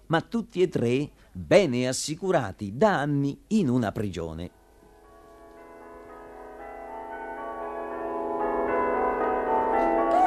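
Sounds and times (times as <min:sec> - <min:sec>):
speech: 0:00.1 - 0:04.6
several bells ringing in an overlapping peal: 0:05.0 - 0:10.2.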